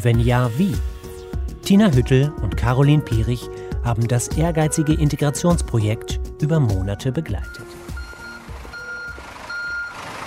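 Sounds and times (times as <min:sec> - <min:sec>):
speech: 0:00.0 - 0:00.9, 0:01.7 - 0:07.8
tour bus low engine rumble: 0:07.4 - 0:10.2
tour bus reversing beeps in Berlin traffic: 0:07.4 - 0:10.2
street noise in Berlin: 0:07.5 - 0:10.2.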